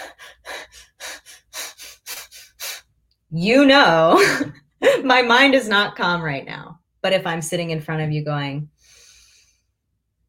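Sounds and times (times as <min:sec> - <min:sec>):
rapid anxious breathing demonstrated by a voice: 0:00.0 - 0:02.9, 0:08.8 - 0:09.7
speech: 0:03.3 - 0:08.7.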